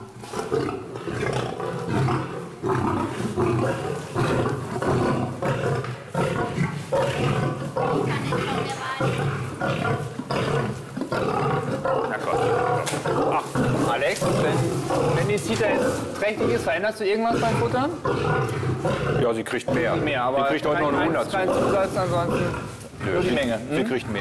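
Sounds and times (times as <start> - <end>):
tigress and male lion roaring and growling at feeding time: 0.0 - 24.1
speech: 0.5 - 0.8, 3.1 - 4.5, 15.4 - 24.1.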